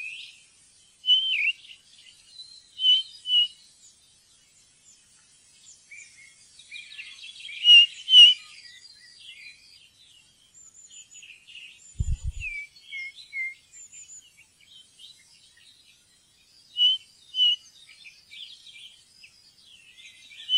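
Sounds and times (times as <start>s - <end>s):
ring ouzel whistled calls and twittering: 0.0s - 20.5s.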